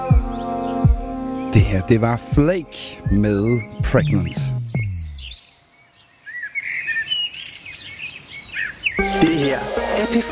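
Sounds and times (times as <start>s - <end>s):
birds chirping and singing outdoors: 0.0s - 10.3s
speech: 1.5s - 4.6s, 9.2s - 10.3s
low tone: 3.1s - 5.4s.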